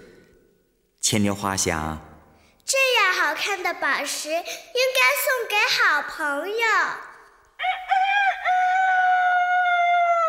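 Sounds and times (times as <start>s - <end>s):
speech: 1.1s - 2.1s, 2.7s - 7.1s
rooster crowing: 7.6s - 10.2s.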